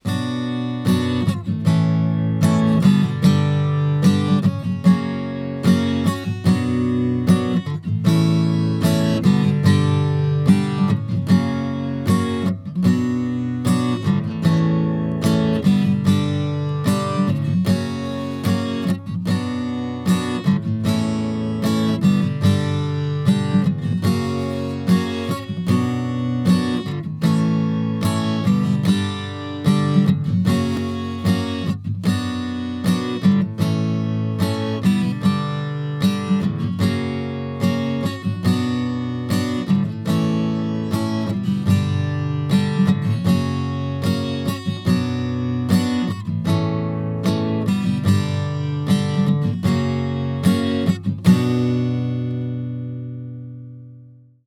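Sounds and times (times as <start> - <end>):
guitar strumming: 0.0 - 54.2.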